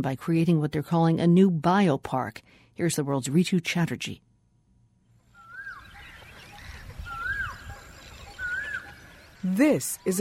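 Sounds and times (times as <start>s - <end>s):
speech: 0.0s - 4.3s, 9.4s - 10.2s
clear whistled bird call at a pond near Delhi: 5.3s - 10.2s.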